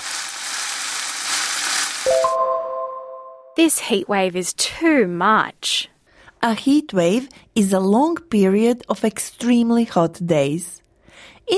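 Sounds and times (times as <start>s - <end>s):
food frying in a hot pan: 0.0s - 2.3s
speech: 3.6s - 11.5s.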